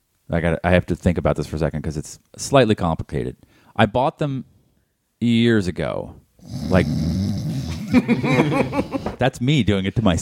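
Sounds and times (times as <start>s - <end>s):
speech: 0.3s - 4.5s, 5.2s - 7.2s, 7.9s - 10.2s
person imitating a snore: 6.4s - 8.0s
laughter: 7.8s - 9.2s.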